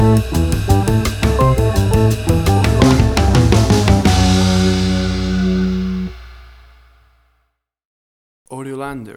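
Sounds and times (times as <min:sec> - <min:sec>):
acid jazz Cuban fusion music stinger: 0:00.0 - 0:06.8.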